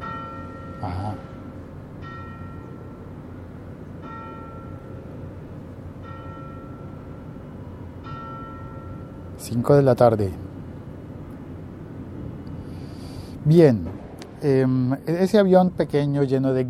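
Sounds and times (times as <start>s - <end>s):
church bell tolling: 0.0s - 9.7s
steady low rumble: 0.0s - 16.6s
speech: 0.8s - 1.4s, 9.5s - 10.4s, 13.5s - 16.6s.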